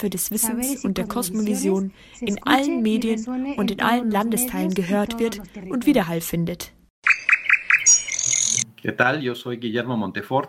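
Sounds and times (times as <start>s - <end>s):
speech: 0.0s - 6.8s, 8.8s - 10.4s
bird song with varied tones and melodies: 7.0s - 8.6s.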